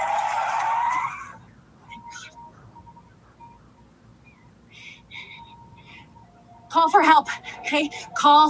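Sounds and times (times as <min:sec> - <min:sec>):
malfunctioning car skidding out of control with tire screech: 0:00.0 - 0:02.4
low rumbling background: 0:01.4 - 0:08.4
scattered squeaks and chirps: 0:01.8 - 0:08.4
speech: 0:06.8 - 0:08.4.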